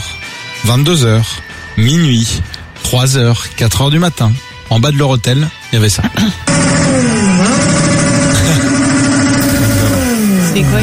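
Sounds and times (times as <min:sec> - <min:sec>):
speech: 0:00.6 - 0:07.6, 0:10.6 - 0:10.8
car engines revving outside a hotel at night: 0:06.5 - 0:10.8.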